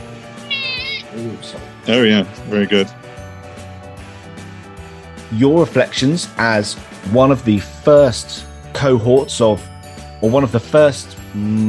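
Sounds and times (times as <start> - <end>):
cat meowing drawn-out: 0.4 - 1.2
speech: 1.1 - 3.0, 5.3 - 11.6.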